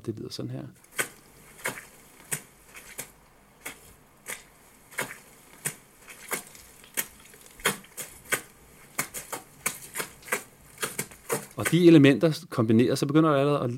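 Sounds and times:
speech: 0.0 - 0.9, 11.7 - 13.7
footsteps in rubber boots edited into rhythm: 0.8 - 11.9.

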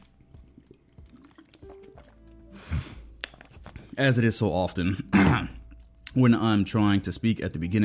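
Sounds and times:
quiet sip of water with soft liquid slurping: 0.0 - 3.2
gulp or swallow: 0.3 - 2.2
speech: 4.0 - 5.0, 6.2 - 7.8.

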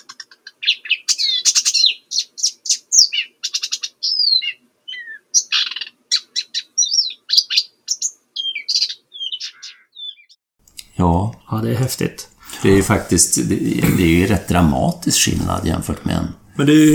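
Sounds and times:
Blyth's Reed Warbler singing migrant at Chokpak Kazakhstan in spring: 0.1 - 10.4
speech: 11.0 - 16.9.

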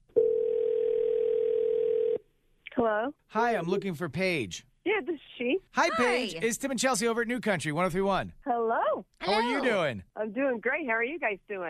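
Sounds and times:
telephone dial tone while placing a call: 0.2 - 2.2
speech: 2.8 - 11.6.

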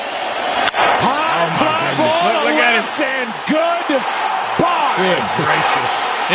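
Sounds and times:
stadium crowd roar: 0.0 - 6.3
baseball bat striking the ball for a home run: 0.6 - 1.0
excited voices in a stadium: 1.0 - 6.3
speech: 2.2 - 6.3.

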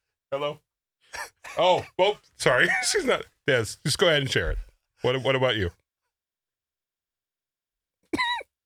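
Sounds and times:
speech: 0.3 - 5.8
short throaty cough: 8.2 - 8.5.

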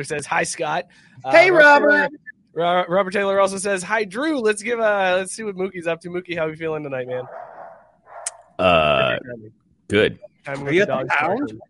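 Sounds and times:
speech: 0.0 - 7.6, 8.6 - 11.6
dog giving a loud drawn-out bark: 7.2 - 8.3.

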